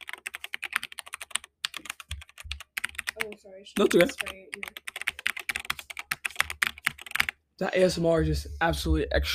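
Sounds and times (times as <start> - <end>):
typing on a mechanical computer keyboard: 0.0 - 7.4
speech: 3.2 - 4.9, 7.6 - 9.3.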